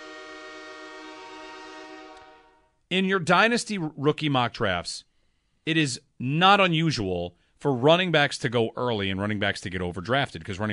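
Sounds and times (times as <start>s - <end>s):
train horn blaring: 0.0s - 2.8s
speech: 2.9s - 10.7s.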